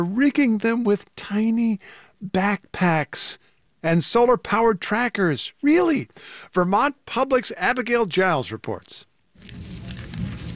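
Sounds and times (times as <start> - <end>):
speech: 0.0 - 9.8
monarch butterfly rustling its legs: 9.4 - 10.5.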